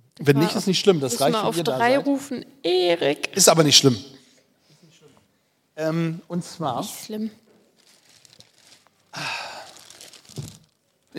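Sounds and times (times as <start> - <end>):
speech: 0.2 - 4.2, 5.8 - 7.4
large sheet of paper rustling and crinkling: 7.4 - 11.1.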